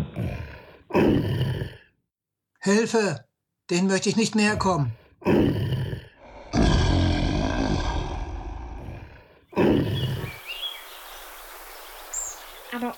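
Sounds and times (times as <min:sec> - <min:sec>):
lions roaring and growling: 0:00.0 - 0:01.9, 0:05.2 - 0:10.4
speech: 0:02.6 - 0:05.6, 0:12.8 - 0:12.9.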